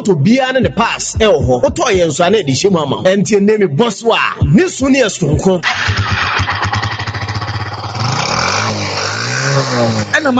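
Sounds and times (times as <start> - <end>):
speech: 0.0 - 6.6, 9.6 - 10.3
motorcycle engine starting and revving: 5.6 - 10.3.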